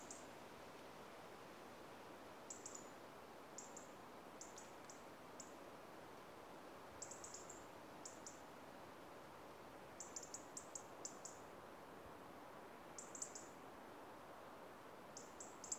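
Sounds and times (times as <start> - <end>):
quiet hissy background: 0.0 - 15.7
European robin giving high-pitched ticking calls: 2.5 - 2.9, 3.6 - 5.5, 7.0 - 8.4, 10.0 - 11.4, 13.0 - 13.5, 15.2 - 15.7.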